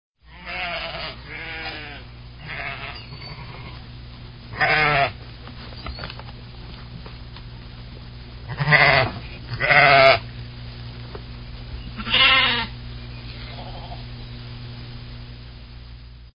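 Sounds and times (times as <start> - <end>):
sheep bleating: 0.3 - 3.8, 4.5 - 5.2, 8.5 - 10.3, 11.9 - 14.1.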